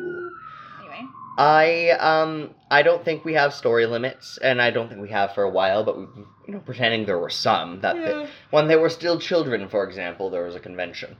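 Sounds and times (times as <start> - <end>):
loud voice imitating a siren's rising whoop: 0.0 - 9.3
emergency siren wailing: 0.0 - 11.1
speech: 1.4 - 11.1.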